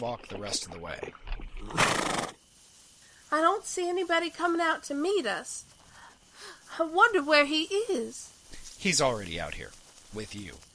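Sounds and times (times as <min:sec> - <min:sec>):
speech: 0:00.0 - 0:02.4, 0:03.3 - 0:05.8, 0:06.4 - 0:10.7
horse whinnying: 0:01.6 - 0:02.4.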